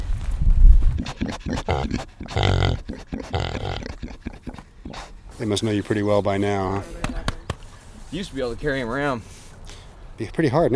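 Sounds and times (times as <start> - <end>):
low rustling and movement of pigs: 0.0 - 10.3
farm pig squealing grunts: 0.9 - 5.2
farm pigs grunting and snorting: 0.9 - 6.0
speech: 1.8 - 3.4, 5.4 - 7.0, 8.1 - 9.4, 10.2 - 10.7.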